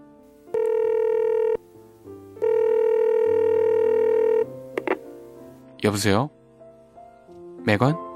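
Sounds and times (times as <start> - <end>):
electronic telephone ringback tone: 0.5 - 1.6, 2.4 - 4.5
speech: 5.8 - 6.4, 7.6 - 8.0.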